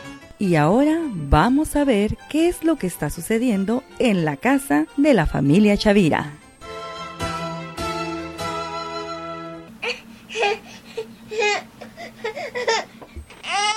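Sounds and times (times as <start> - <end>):
speech: 0.4 - 6.4
sustained tonal notes: 3.4 - 11.6
baby babbling after waking up: 9.8 - 13.7.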